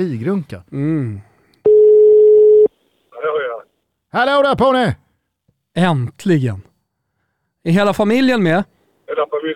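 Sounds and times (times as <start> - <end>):
speech: 0.0 - 1.3, 4.1 - 5.0, 5.8 - 6.7, 7.6 - 9.5
phone ringback tone: 1.7 - 2.7.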